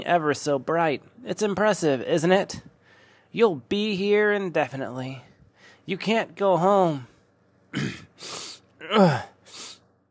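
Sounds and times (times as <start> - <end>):
speech: 0.0 - 2.7, 3.3 - 5.3, 5.9 - 7.1, 7.7 - 9.3
woman clearing her throat in a stuffy space: 7.7 - 8.2.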